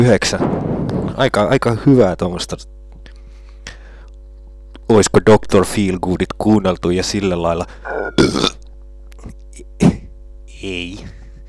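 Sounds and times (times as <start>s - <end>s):
speech: 0.0s - 2.8s, 4.9s - 8.6s, 10.6s - 11.2s
faint hum: 0.0s - 11.4s
man burping: 7.8s - 10.1s.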